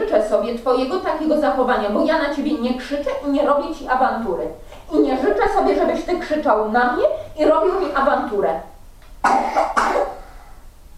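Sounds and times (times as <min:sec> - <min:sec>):
speech: 0:00.1 - 0:10.1
person coughing: 0:09.2 - 0:10.9.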